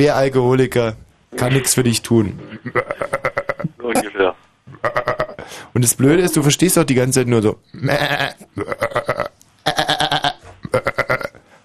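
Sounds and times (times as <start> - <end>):
speech: 0.0 - 3.2, 5.5 - 10.2
person imitating goat bleating: 2.6 - 4.0, 7.8 - 11.4.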